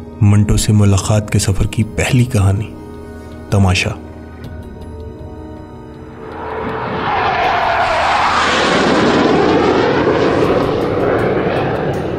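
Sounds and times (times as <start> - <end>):
speech: 0.2 - 2.8, 3.5 - 4.0
aircraft engine roar as plane passes overhead: 4.0 - 12.1.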